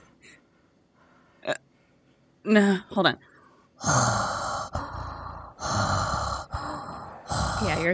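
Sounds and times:
speech: 2.5s - 4.4s
person imitating heavy rasping breathing through a mask while walking: 3.8s - 7.9s.

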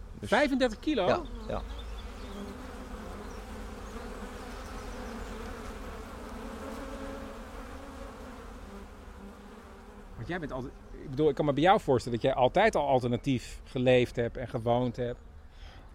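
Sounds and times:
honey bees buzzing inside a beehive: 0.0s - 12.0s
speech: 0.2s - 1.8s, 10.3s - 15.3s.

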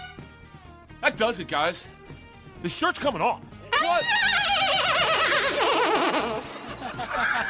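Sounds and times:
speech: 1.2s - 2.0s, 2.6s - 5.8s, 7.2s - 7.4s
person imitating a horse whinny: 3.8s - 6.5s
laughter: 4.4s - 7.4s.

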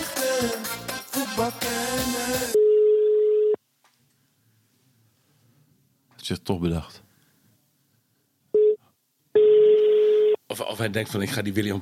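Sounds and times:
speech: 0.4s - 0.8s, 1.4s - 2.6s, 6.3s - 7.0s, 10.5s - 11.8s
telephone line tone beep on a call: 2.6s - 3.6s, 9.4s - 10.4s.

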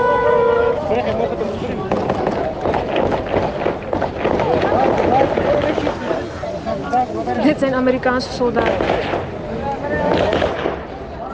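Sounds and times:
dense crowd clamoring at an airport gate entrance: 0.0s - 6.4s
sharp gunshots at an airport gate entrance: 1.8s - 6.2s, 8.5s - 11.0s
speech: 7.7s - 9.3s.

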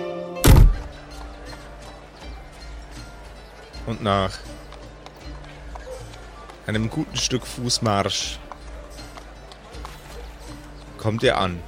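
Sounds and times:
heavy door falling shut: 0.4s - 0.9s
speech: 3.9s - 4.5s, 6.7s - 8.4s, 11.0s - 11.6s.

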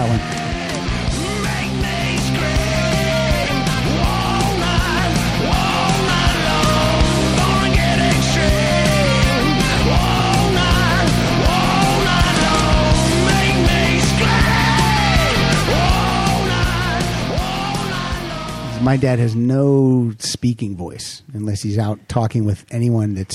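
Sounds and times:
strained yelling rock vocal: 0.0s - 0.6s, 1.2s - 18.8s
loud dense rock song with full band: 0.0s - 19.3s
speech: 18.9s - 23.3s.

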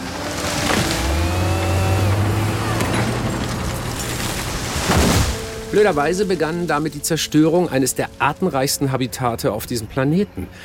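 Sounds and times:
crashing bursts: 0.0s - 6.2s
chainsaws clearing rainforest: 0.0s - 8.3s
bulldozer engines droning and revving: 0.0s - 10.6s
speech: 5.8s - 10.6s.

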